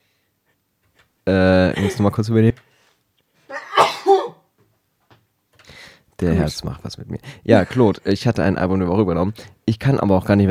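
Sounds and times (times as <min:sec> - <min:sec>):
speech: 0:01.3 - 0:02.6, 0:06.4 - 0:10.4
person sneezing: 0:03.5 - 0:04.4.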